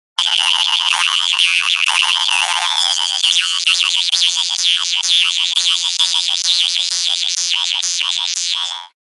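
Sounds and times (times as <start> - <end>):
guimbarde jew's harp: 0.2 - 9.0.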